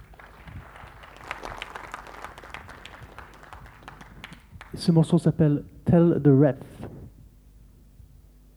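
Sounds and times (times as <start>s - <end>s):
audience applause for a pianist: 0.0s - 4.8s
speech: 4.8s - 6.9s.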